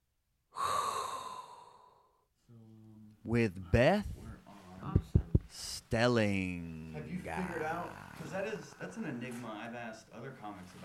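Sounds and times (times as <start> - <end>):
deep inhaled breath: 0.5 - 2.2
speech: 3.2 - 4.2, 5.5 - 10.8.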